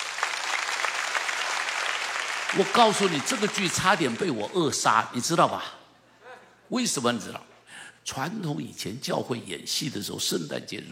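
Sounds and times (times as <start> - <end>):
audience applause: 0.0 - 4.6
speech: 2.5 - 5.8, 6.7 - 10.9.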